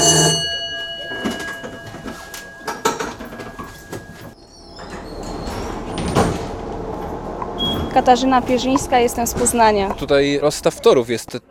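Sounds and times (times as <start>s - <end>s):
tram warning signal sounded by the driver: 0.0s - 4.6s, 6.6s - 10.0s
tram rumbling and clattering movement noise: 1.2s - 11.4s
speech: 8.0s - 11.4s.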